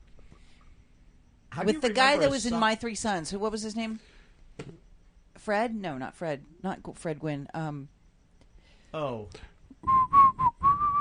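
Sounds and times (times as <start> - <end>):
speech: 1.6 - 4.8, 5.5 - 8.0, 8.9 - 10.1
person whistling a short song tune: 9.8 - 10.9.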